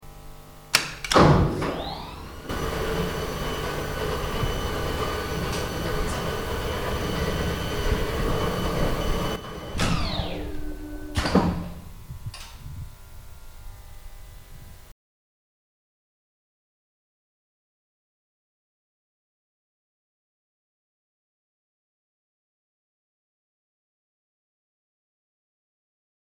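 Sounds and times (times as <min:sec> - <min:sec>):
elevator motor: 0:00.0 - 0:14.5.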